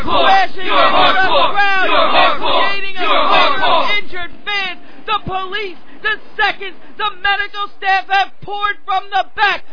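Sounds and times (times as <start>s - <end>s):
wrestling event crowd roaring and screaming: 0.0s - 3.9s
excited voices of wrestling crowd: 0.0s - 9.7s
individual shouts and yelps from wrestling crowd: 0.0s - 9.7s.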